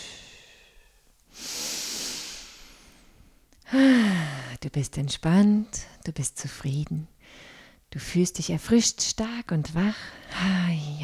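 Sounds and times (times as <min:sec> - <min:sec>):
deep breathing during a guided relaxation exercise: 0:00.0 - 0:04.2
speech: 0:03.7 - 0:04.1, 0:04.7 - 0:07.2, 0:07.9 - 0:11.0.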